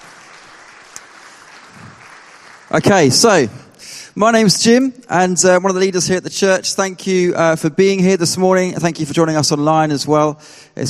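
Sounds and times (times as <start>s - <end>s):
church audience applause: 0.0s - 3.5s
speech: 2.7s - 10.8s.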